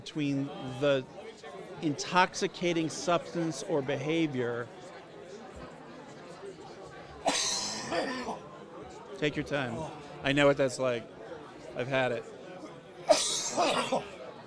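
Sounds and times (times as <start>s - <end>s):
speech: 0.1s - 4.8s, 7.9s - 8.4s, 9.2s - 11.2s, 11.8s - 12.4s, 13.6s - 14.1s
person coughing in a coughing fit: 7.3s - 8.4s, 13.1s - 14.1s.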